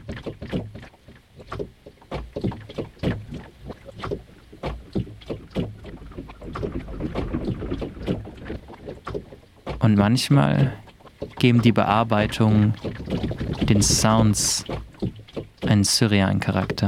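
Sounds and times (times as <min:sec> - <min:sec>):
water sloshing and lapping around a boat: 0:00.0 - 0:16.8
low wind rumble: 0:05.7 - 0:15.1
speech: 0:09.9 - 0:10.8, 0:11.4 - 0:14.8, 0:15.7 - 0:16.8.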